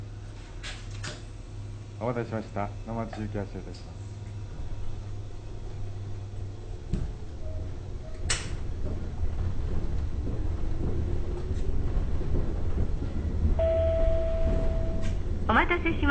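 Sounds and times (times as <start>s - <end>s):
local one-man electric train rolling with a low rumble: 0.0s - 16.0s
speech: 2.0s - 4.1s
sharp clunks from the train track: 6.7s - 15.5s.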